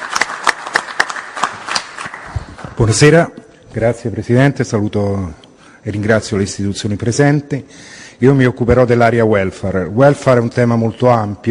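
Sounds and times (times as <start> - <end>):
scattered applause welcoming a speaker to the podium: 0.0 - 2.8
speech: 2.8 - 11.4.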